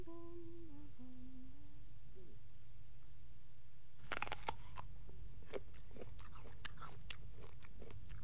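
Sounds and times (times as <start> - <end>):
woman singing: 0.0 - 1.8
woman taking crisp crunching bites and chewing: 4.0 - 8.2.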